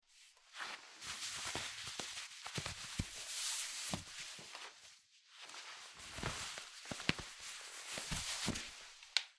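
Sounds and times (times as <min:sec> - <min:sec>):
socks being taken off: 0:00.1 - 0:09.3.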